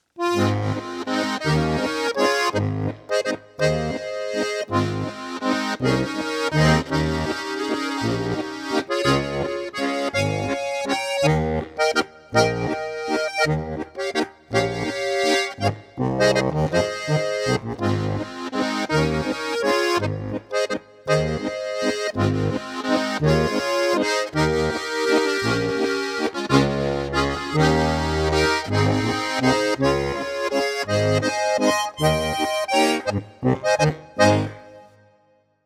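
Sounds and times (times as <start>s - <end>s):
2-chörig flat waltz music in B Es As Des: 0.2s - 35.0s.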